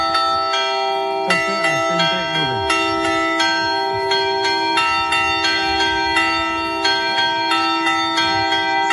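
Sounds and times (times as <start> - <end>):
church bells ringing storm warning toll: 0.0 - 8.9.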